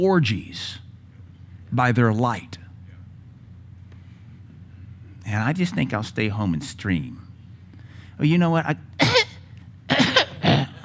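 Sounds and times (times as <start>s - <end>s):
speech: 0.0s - 0.8s, 1.7s - 2.6s, 5.2s - 7.2s, 8.2s - 8.9s
person coughing harshly: 9.0s - 10.8s.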